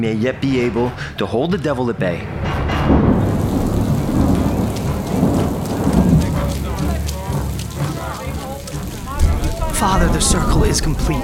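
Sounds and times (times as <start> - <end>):
speech: 0.0 - 3.1, 9.8 - 11.2
heavy rain downpour around a church: 2.6 - 11.2
faint voices murmuring: 3.8 - 11.2.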